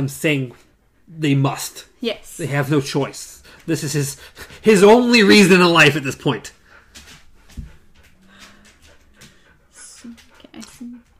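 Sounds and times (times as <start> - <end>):
speech: 0.0 - 6.6
puppy panting: 3.4 - 11.1.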